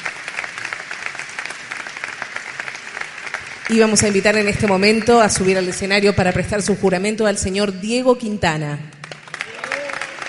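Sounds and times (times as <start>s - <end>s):
audience clapping: 0.0s - 6.2s, 8.9s - 10.2s
speech: 3.7s - 8.9s.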